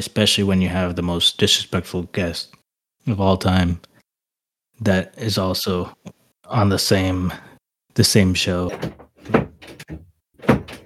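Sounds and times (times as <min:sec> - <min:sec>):
speech: 0:00.0 - 0:03.9, 0:04.8 - 0:10.0
door closing with creak and knock: 0:08.7 - 0:10.8.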